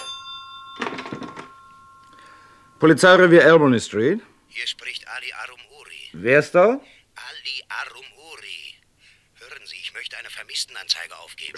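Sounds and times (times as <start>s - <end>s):
telephone ringing in a London police station: 0.0s - 3.9s
speech: 2.8s - 6.9s, 10.0s - 11.5s.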